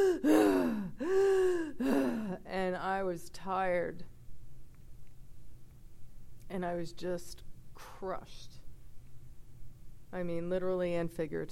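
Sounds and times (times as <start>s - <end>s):
speech: 0.0s - 0.5s, 1.8s - 4.2s, 6.5s - 8.6s, 10.1s - 11.5s
voice imitating labored gasping breaths of someone with punctured ribs and a collapsed lung: 0.0s - 2.4s.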